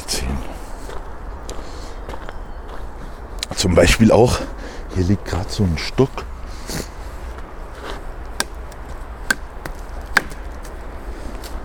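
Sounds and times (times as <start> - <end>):
steady low outdoor rumble: 0.0 - 11.6
speech: 3.6 - 6.9
piece of wood knocking against a tree trunk: 8.4 - 10.5.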